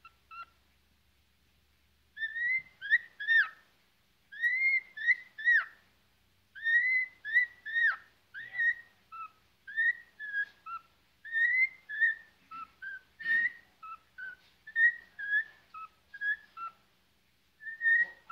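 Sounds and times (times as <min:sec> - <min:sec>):
cockatiel whistling upslurred and downslurred notes: 0:02.2 - 0:03.6, 0:04.3 - 0:05.8, 0:06.6 - 0:16.8, 0:17.6 - 0:18.3.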